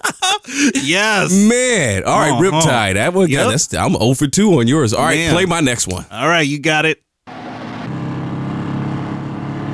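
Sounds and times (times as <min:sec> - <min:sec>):
laughter: 0:00.0 - 0:01.5
speech: 0:00.4 - 0:07.0
engine revving with a throaty low drone: 0:07.3 - 0:09.7.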